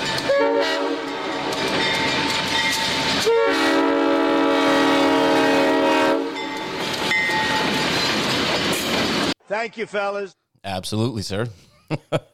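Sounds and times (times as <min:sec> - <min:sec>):
passing train rumbling and rattling: 0:00.0 - 0:09.4
train horn blaring in long sustained chords: 0:00.2 - 0:01.5, 0:03.2 - 0:06.5
speech: 0:09.6 - 0:12.3
laughter: 0:11.5 - 0:12.3.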